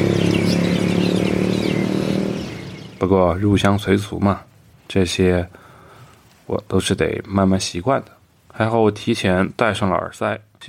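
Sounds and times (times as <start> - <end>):
motorcycle engine roaring outside a window at night in Chiang Mai Thailand: 0.0 - 3.1
speech: 3.0 - 5.6, 6.5 - 10.6.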